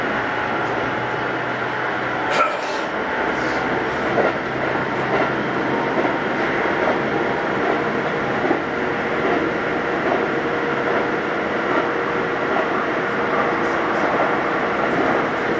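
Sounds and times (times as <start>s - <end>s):
aluminum-bodied commuter train wheels and running noise rumbling: 0.0s - 15.5s
knocks and clatters from the rails: 0.0s - 15.5s.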